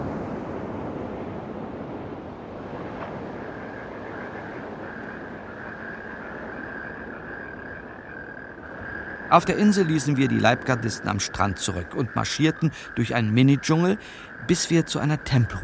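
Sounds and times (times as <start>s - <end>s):
sea waves washing around a state yacht on the Gulf of Cambay: 0.0s - 15.6s
thin sustained whine: 3.0s - 15.0s
speech: 9.3s - 15.6s.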